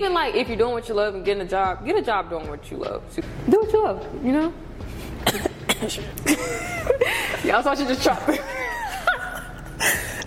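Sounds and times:
speech: 0.0s - 8.6s, 9.8s - 10.1s
short sharp coughs: 5.2s - 6.0s.

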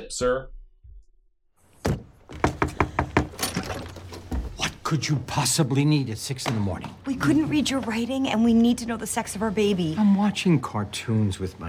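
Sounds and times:
speech: 0.0s - 0.6s, 4.9s - 11.6s
knocking on the front door of a house: 1.8s - 3.4s.

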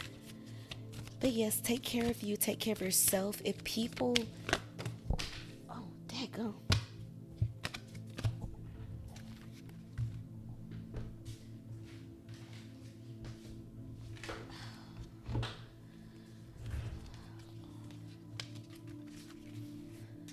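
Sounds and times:
tarot cards being shuffled: 0.0s - 5.6s, 6.7s - 10.2s, 14.1s - 15.7s, 16.7s - 20.3s
speech: 1.2s - 4.5s, 6.4s - 6.6s.

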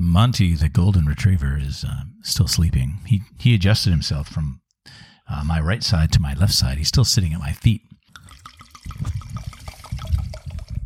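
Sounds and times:
speech: 0.2s - 8.0s
wine being poured into a glass: 8.1s - 10.8s.

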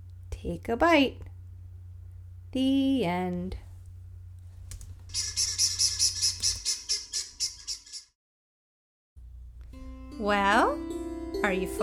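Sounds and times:
low rumble: 0.0s - 5.1s
speech: 0.4s - 1.3s, 2.5s - 3.6s, 10.2s - 11.8s
bird squawking: 5.1s - 8.1s.

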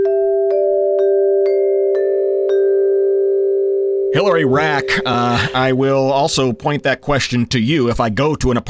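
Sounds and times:
doorbell chime with struck ringing tones: 0.0s - 7.2s
speech: 4.2s - 8.6s.

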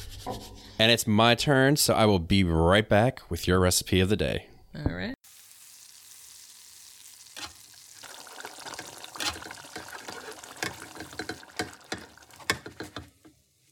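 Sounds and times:
speech: 0.2s - 5.2s
food sizzling and crackling in a hot pan: 5.2s - 13.6s.

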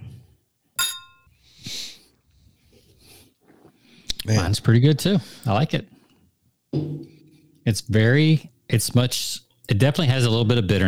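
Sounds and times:
two glasses of a dark drink clinking in a toast: 0.8s - 1.3s
soft breathing and sniffing: 1.6s - 4.1s
speech: 4.3s - 6.0s, 7.7s - 10.8s.

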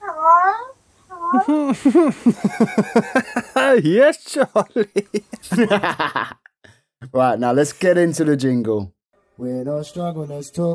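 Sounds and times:
male pet cat meowing: 0.0s - 1.5s
speech: 1.3s - 6.3s, 7.1s - 10.7s
laughter: 1.3s - 6.4s.

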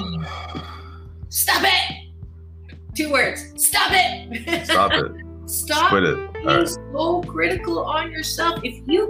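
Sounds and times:
deep breath drawn in sharply: 0.2s - 1.2s
speech: 3.1s - 9.0s.

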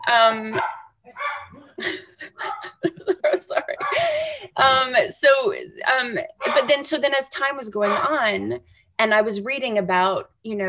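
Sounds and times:
speech: 0.0s - 1.2s, 1.8s - 2.5s, 3.3s - 10.6s
pack of dogs barking excitedly outdoors: 0.5s - 1.8s, 2.4s - 2.8s, 3.7s - 4.1s, 6.4s - 7.0s, 7.8s - 8.6s
laughter: 1.6s - 4.6s.

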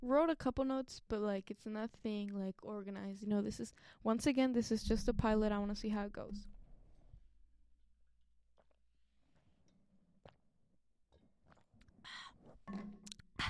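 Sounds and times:
speech: 0.0s - 6.6s, 12.1s - 13.0s
person gulping and swallowing a drink: 9.6s - 10.5s, 11.1s - 13.4s
wet mouth clicks: 11.1s - 13.4s.

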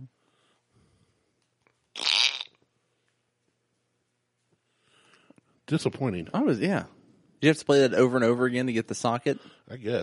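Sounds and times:
buzzy fart sound effect: 2.0s - 2.6s
speech: 5.7s - 10.0s.

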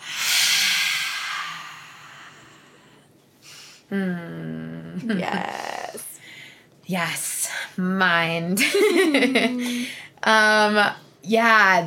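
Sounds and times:
deep breath in and out: 0.0s - 3.9s
speech: 3.9s - 6.1s, 6.9s - 11.8s.

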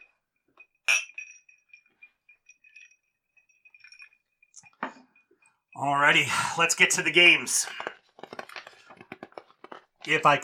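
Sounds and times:
glasses clinking together in a toast: 0.0s - 5.8s
speech: 5.8s - 7.9s, 10.1s - 10.4s.

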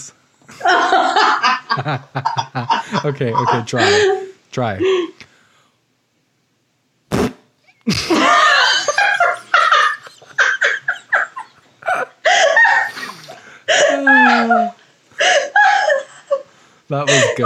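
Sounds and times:
people giggling: 0.5s - 4.3s, 7.8s - 17.4s
speech: 1.8s - 5.0s, 16.9s - 17.4s
sputtering mouth fart noises imitating flatulence: 7.1s - 8.1s.

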